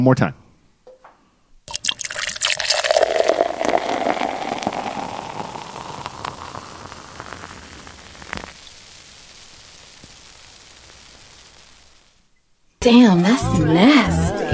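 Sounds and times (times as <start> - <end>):
speech: 0.0 - 0.4, 12.8 - 14.4
drink poured into a glass: 1.7 - 9.2.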